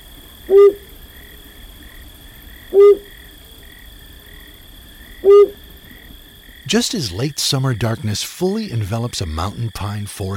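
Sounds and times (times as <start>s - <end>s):
faint steady insect drone on a late-summer night: 0.0s - 10.3s
male flammulated owl hooting in a ponderosa pine: 0.4s - 0.9s, 2.6s - 3.3s, 5.1s - 6.1s
speech: 0.5s - 0.8s, 6.7s - 10.3s.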